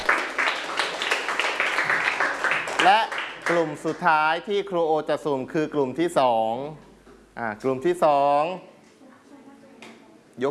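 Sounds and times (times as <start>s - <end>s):
students in a classroom clapping for classmates: 0.0s - 4.1s
speech: 2.8s - 6.8s, 7.4s - 8.7s.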